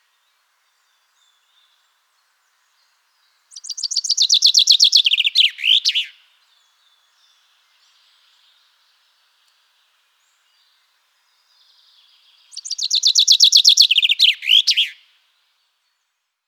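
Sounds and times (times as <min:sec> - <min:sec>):
common chaffinch (Fringilla coelebs) singing: 0:03.5 - 0:06.2, 0:12.4 - 0:15.0.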